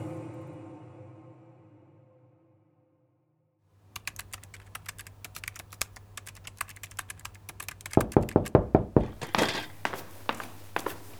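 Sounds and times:
light rapid keyboard-like tapping: 0:03.9 - 0:09.2
firm knocks on a door: 0:07.9 - 0:09.8
soft shuffling: 0:09.0 - 0:11.1.

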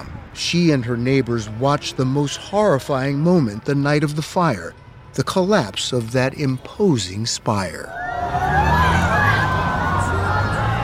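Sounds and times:
speech: 0:00.0 - 0:08.4
large crowd screaming no in horror: 0:07.8 - 0:10.8.

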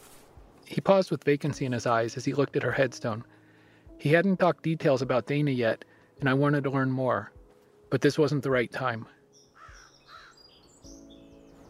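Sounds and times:
speech: 0:00.7 - 0:03.4, 0:04.0 - 0:09.2
crows cawing in leafless oak trees in a cemetery on a windy day: 0:09.5 - 0:10.6.

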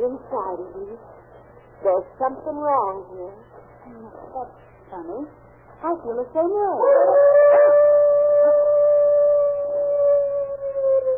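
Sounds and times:
faint low hum: 0:00.0 - 0:11.1
speech: 0:00.2 - 0:07.9
dog howling: 0:06.8 - 0:11.1.

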